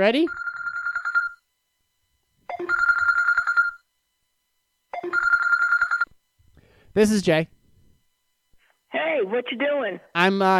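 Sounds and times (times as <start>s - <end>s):
speech: 0.0s - 0.4s, 7.0s - 7.6s, 8.9s - 10.5s
telephone ringing in electronic bursts: 0.2s - 1.5s, 2.4s - 3.9s, 4.9s - 6.2s.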